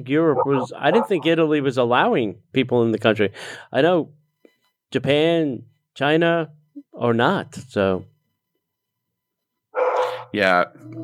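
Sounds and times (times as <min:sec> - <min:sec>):
speech: 0:00.0 - 0:04.2, 0:04.9 - 0:08.1, 0:10.3 - 0:11.0
dog barking excitedly: 0:00.3 - 0:01.3.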